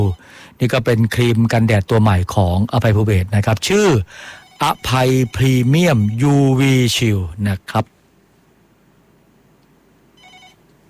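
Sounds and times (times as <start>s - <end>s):
low steady hum: 0.0s - 10.8s
speech: 0.1s - 8.0s
telephone ringing as a listener calls in to a radio phone-in: 4.2s - 6.4s, 10.2s - 10.6s.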